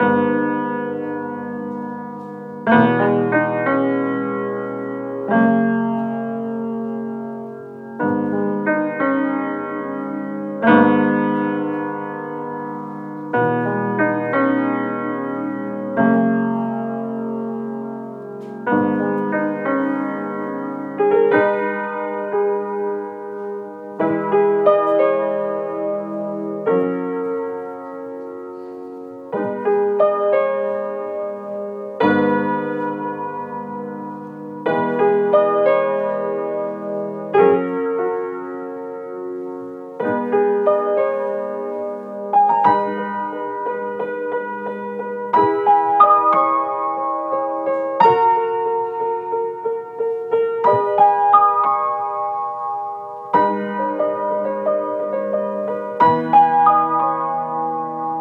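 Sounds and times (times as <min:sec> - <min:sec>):
piano music in G sharp minor at 90 BPM: 0:00.0 - 0:58.1.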